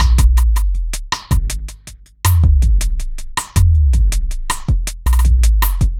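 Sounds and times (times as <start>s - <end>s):
tribal fusion groove: 0.0s - 5.9s.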